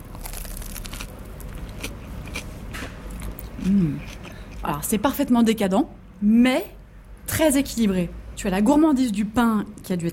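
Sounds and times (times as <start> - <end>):
biting into a crispy toasted grilled cheese sandwich: 0.0 - 3.4
speech: 3.6 - 6.8, 7.4 - 10.1.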